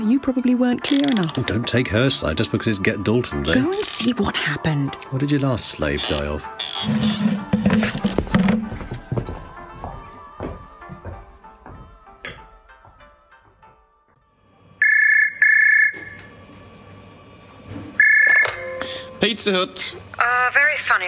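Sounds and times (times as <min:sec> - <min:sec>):
speech: 0:00.0 - 0:08.2, 0:19.4 - 0:21.0
clattering and knocking: 0:06.7 - 0:09.0, 0:12.2 - 0:14.0
telephone ringing in short electronic bursts: 0:14.8 - 0:16.2, 0:18.0 - 0:19.1.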